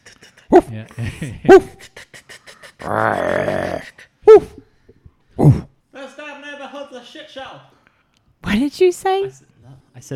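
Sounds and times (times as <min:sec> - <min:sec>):
speech: 0:00.6 - 0:02.1, 0:02.8 - 0:04.5, 0:08.5 - 0:10.1
dog barking in the distance: 0:01.5 - 0:01.8, 0:04.3 - 0:04.6.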